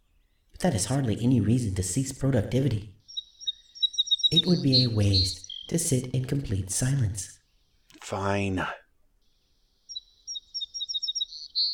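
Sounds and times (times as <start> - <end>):
speech: 0.6 - 3.0, 4.3 - 7.4, 8.0 - 8.8
song sparrow singing: 2.6 - 8.0, 9.2 - 11.7.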